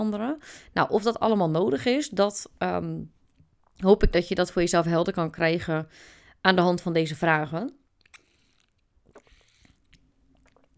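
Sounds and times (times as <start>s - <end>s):
speech: 0.0s - 3.2s, 3.8s - 7.8s
person sipping a drink: 8.0s - 10.7s
soft wet mouth clicks: 8.0s - 10.7s
person swallowing: 9.0s - 10.7s.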